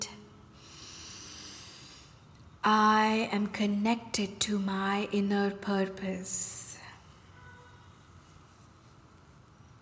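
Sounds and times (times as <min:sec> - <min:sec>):
deep inhale through the nose: 0:00.6 - 0:02.2
speech: 0:02.6 - 0:06.6.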